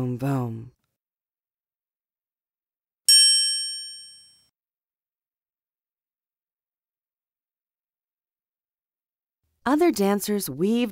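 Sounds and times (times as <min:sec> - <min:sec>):
speech: 0:00.0 - 0:00.8, 0:09.6 - 0:10.9
single bright bell strike ringing: 0:03.1 - 0:04.4.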